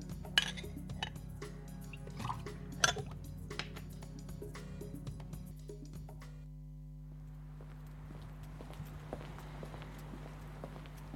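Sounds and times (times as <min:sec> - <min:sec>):
low steady hum: 0:00.0 - 0:11.1
glass clinks: 0:00.4 - 0:01.2.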